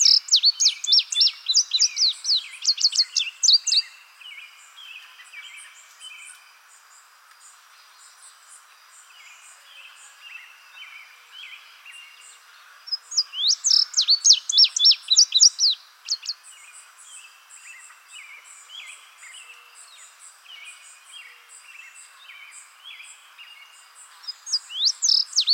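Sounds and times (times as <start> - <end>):
indigo bunting soft faint twitters: 0.0 - 22.6, 23.4 - 25.5.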